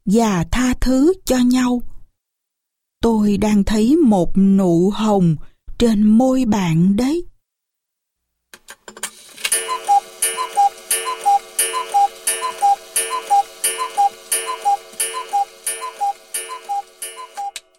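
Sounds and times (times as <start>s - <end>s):
speech: 0.1s - 1.9s, 3.0s - 7.3s
wall clock ticking with a bright metallic ring: 9.5s - 17.7s.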